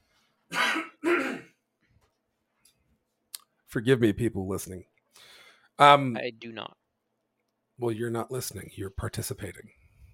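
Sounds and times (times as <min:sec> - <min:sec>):
man clearing his throat: 0:00.5 - 0:01.6
man coughing up phlegm: 0:00.5 - 0:01.6
speech: 0:03.7 - 0:04.9, 0:05.8 - 0:06.8, 0:07.8 - 0:09.8.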